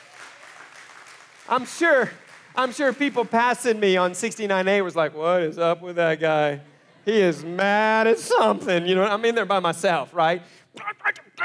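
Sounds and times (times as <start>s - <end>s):
audience applause: 0.0s - 4.0s
speech: 1.5s - 11.4s.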